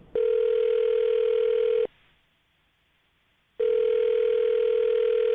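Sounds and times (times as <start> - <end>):
telephone ringing tones: 0.2 - 1.9, 3.6 - 5.3.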